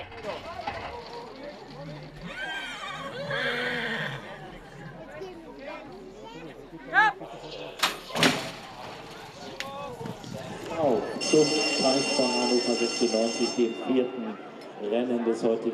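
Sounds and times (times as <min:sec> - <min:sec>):
busy chattering crowd at a horse race: 0:00.0 - 0:15.7
horses whinnying and snorting while loaded into starting stalls at a horse race: 0:02.2 - 0:04.4
starting-gate bell ringing loudly at a horse race: 0:11.2 - 0:14.4.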